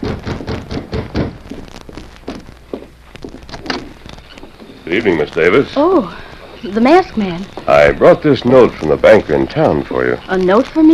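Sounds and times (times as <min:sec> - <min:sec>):
hollow knocks on a door: 0:00.0 - 0:01.6
speech: 0:04.9 - 0:10.9.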